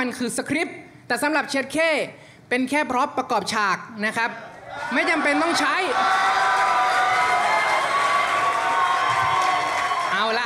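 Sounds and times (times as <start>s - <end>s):
speech: 0.0s - 6.5s, 10.2s - 10.4s
large crowd screaming and cheering: 4.7s - 10.4s.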